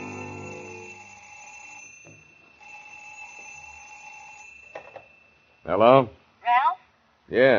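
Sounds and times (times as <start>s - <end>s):
telephone bell ringing in a deputy sheriff's home: 0.0s - 5.7s
speech: 5.7s - 6.2s, 7.3s - 7.5s.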